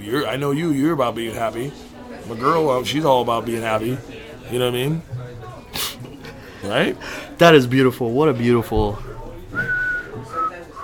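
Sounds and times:
speech: 0.0 - 5.2, 6.6 - 9.8
person whistling a short wavering tune: 9.5 - 10.8.

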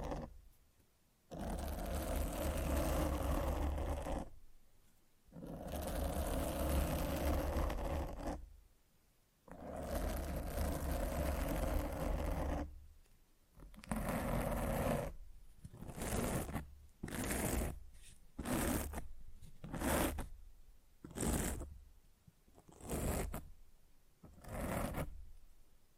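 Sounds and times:
scratching and rubbing on a microphone: 0.0 - 0.3, 1.3 - 4.3, 5.4 - 8.4, 9.5 - 12.7, 13.8 - 20.3, 21.1 - 21.7, 22.6 - 23.5, 24.3 - 25.2.

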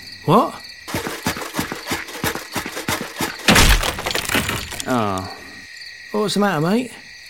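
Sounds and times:
speech: 0.2 - 0.6, 4.9 - 5.4, 6.1 - 7.0
steady rhythmic knocking thumps: 0.9 - 4.1
wooden spear smashing into splinters: 0.9 - 5.2.

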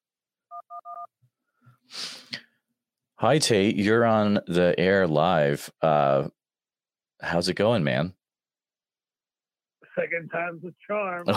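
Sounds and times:
phone keypad beeps from pressing a key to accept a call: 0.5 - 1.1
speech: 3.2 - 6.4, 7.2 - 8.2, 10.0 - 11.3.

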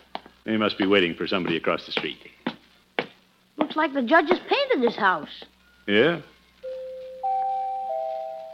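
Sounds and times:
speech: 0.5 - 2.4, 3.6 - 6.3
doorbell chiming: 6.6 - 8.5.

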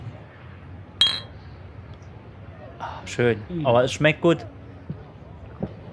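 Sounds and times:
low hum: 0.0 - 5.9
two beer glasses clinking in a toast: 1.0 - 1.4
speech: 3.0 - 4.6.

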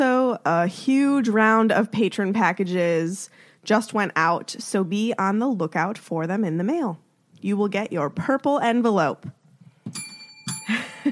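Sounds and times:
speech: 0.0 - 10.0
double ring of a bell: 9.9 - 11.0.

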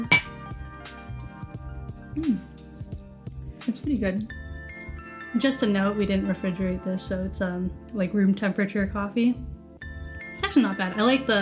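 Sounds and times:
drink containers clinking in a toast: 0.0 - 0.4
speech: 3.9 - 4.4, 5.3 - 9.5, 10.4 - 11.3.

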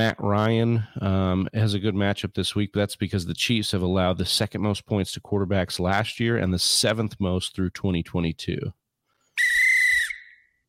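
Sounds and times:
speech: 0.0 - 8.8
shrill whistle blast blown by accident: 9.4 - 10.6.

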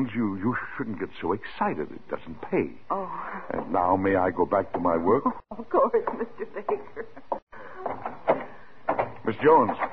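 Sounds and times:
speech: 0.0 - 7.2, 9.4 - 9.9
locked office door rattling against its lock: 7.8 - 9.9.

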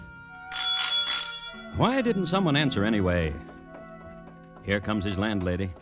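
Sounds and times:
bright mechanical doorbell rung impatiently in Glasgow, Scotland: 0.5 - 2.7
speech: 1.8 - 3.6, 4.7 - 5.8.

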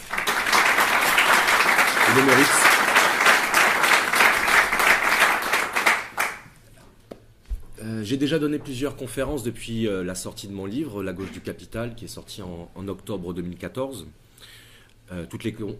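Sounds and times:
large audience applause: 0.0 - 6.5
scattered claps: 0.0 - 6.6
speech: 2.2 - 2.6, 8.1 - 15.7.

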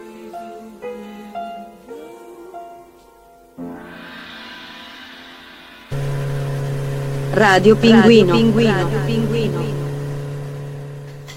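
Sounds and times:
motorcycle engine humming at a refuelling stop: 5.9 - 11.3
speech: 7.4 - 9.8.

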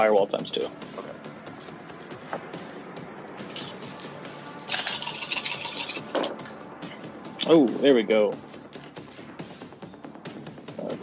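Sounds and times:
speech: 0.0 - 1.2, 7.5 - 8.4
dice rolling during a tabletop role-playing game: 3.5 - 6.3.

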